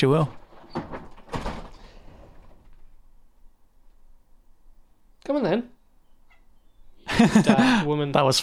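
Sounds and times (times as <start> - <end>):
speech: 0.0 - 0.4, 5.3 - 5.7, 7.2 - 8.4
door opened with rattling sliding clatter: 0.0 - 3.0
laughter: 7.0 - 7.9.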